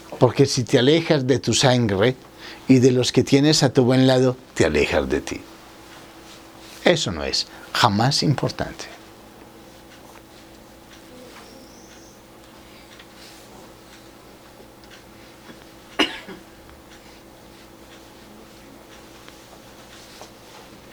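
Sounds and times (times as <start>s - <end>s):
faint steady hum: 0.0s - 20.9s
speech: 0.2s - 5.5s, 6.9s - 9.0s
woman coughing: 16.0s - 16.6s.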